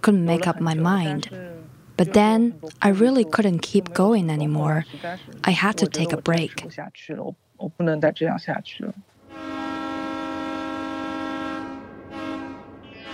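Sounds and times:
speech: 0.0s - 9.6s
passenger train horn blaring: 9.2s - 13.1s.

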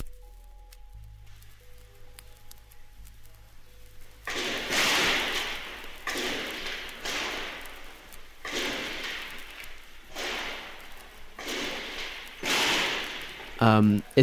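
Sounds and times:
quiet electrical hum: 0.0s - 14.2s
gunshots inside broadcast station offices during an attack: 4.3s - 14.2s
speech: 13.6s - 14.2s.

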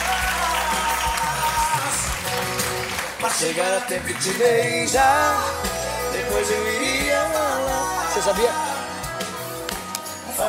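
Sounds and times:
applause of many hands clapping: 0.0s - 4.9s
speech: 3.2s - 8.7s.

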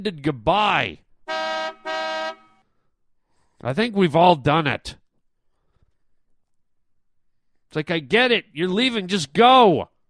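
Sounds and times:
speech: 0.0s - 1.0s, 3.6s - 5.0s, 7.7s - 9.9s
car horn honking: 1.2s - 2.6s.

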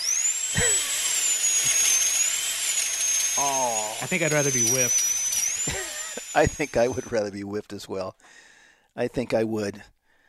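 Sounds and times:
dentist drill whirring with high whine: 0.0s - 7.3s
speech: 3.4s - 5.1s, 6.4s - 10.0s.

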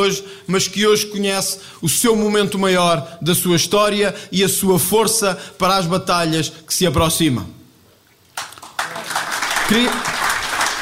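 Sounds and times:
speech: 0.0s - 7.6s, 9.7s - 10.1s
crowd applause for a political candidate: 8.3s - 10.8s.

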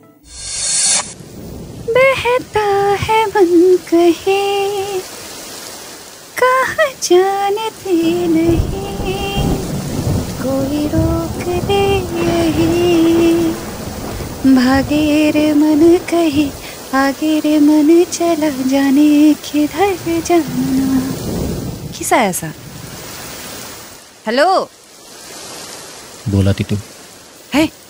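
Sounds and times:
heavy rain pouring outside a stopped car: 0.2s - 27.8s
thunder rumbling: 0.3s - 4.9s, 7.2s - 23.9s
speech: 2.2s - 5.1s, 7.0s - 8.8s, 14.4s - 20.8s, 22.0s - 22.6s, 24.2s - 24.8s, 26.3s - 26.9s, 27.5s - 27.8s.

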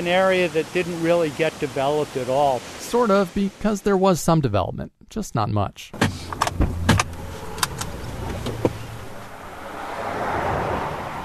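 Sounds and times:
speech: 0.0s - 6.0s
car door and keys clicking and thumping: 6.0s - 9.0s
car engine starting: 6.0s - 11.2s.

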